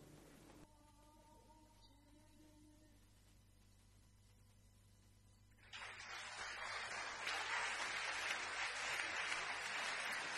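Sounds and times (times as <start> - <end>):
audience applause: 5.6 - 10.3.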